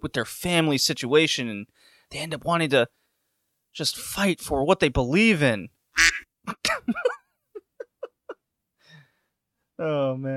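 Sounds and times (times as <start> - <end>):
speech: 0.0 - 3.0, 3.7 - 7.1, 9.8 - 10.3
faint squawk: 6.0 - 6.2
nasal duck quacks from a soundboard button sound effect: 6.0 - 6.2.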